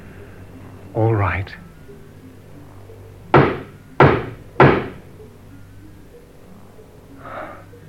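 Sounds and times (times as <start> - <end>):
faint sound: 0.0 - 4.0, 5.0 - 7.8
speech: 1.0 - 1.7
knocking on a wooden door: 3.4 - 5.0.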